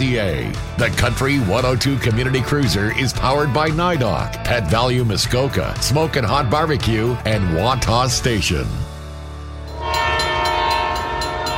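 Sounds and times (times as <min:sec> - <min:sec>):
speech: 0:00.1 - 0:08.9
passenger train horn blaring: 0:09.7 - 0:11.5.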